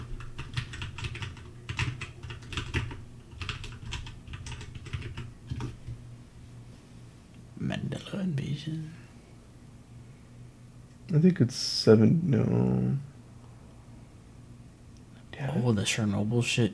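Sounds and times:
computer keyboard clacking as a search is typed: 0:00.0 - 0:06.0
speech: 0:08.2 - 0:09.0, 0:11.1 - 0:13.1, 0:15.6 - 0:16.7.

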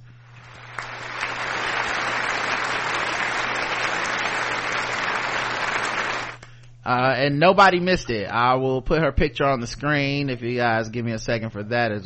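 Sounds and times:
low electrical hum: 0:00.0 - 0:12.0
crowd applause sound effect: 0:00.4 - 0:06.4
speech: 0:06.9 - 0:12.0.

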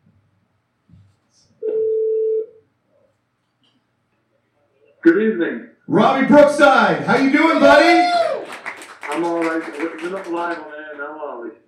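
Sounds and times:
telephone tone as a phone call is placed: 0:01.6 - 0:02.6
speech: 0:05.1 - 0:08.2, 0:09.2 - 0:11.6.

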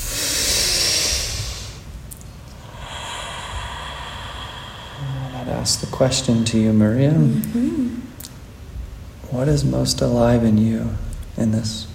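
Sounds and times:
people drawing a deep breath in unison: 0:00.0 - 0:08.0
speech: 0:05.5 - 0:08.0, 0:09.4 - 0:11.9.

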